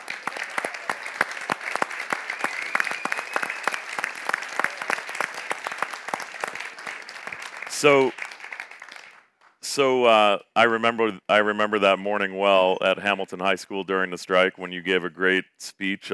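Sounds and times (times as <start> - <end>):
audience applause for teachers: 0.0 - 9.6
speech: 7.8 - 8.2, 9.8 - 16.1.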